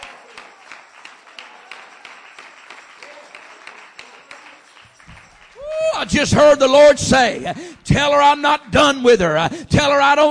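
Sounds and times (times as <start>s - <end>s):
faint congregation clapping during a church service: 0.0s - 7.6s
speech: 6.0s - 10.3s.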